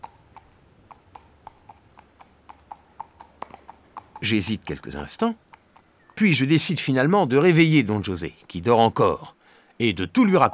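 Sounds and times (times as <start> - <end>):
horse hooves clip-clopping: 0.0 - 6.4
speech: 4.2 - 5.5, 6.2 - 10.5.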